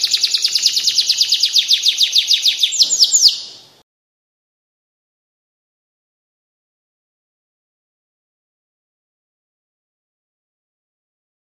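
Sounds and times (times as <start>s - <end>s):
standard-type canary singing: 0.0s - 3.8s.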